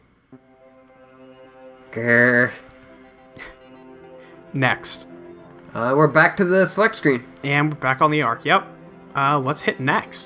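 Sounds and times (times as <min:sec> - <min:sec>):
speech: 0:00.3 - 0:00.6, 0:01.9 - 0:02.7, 0:04.5 - 0:05.1, 0:05.7 - 0:10.2
brief click: 0:02.7 - 0:03.0.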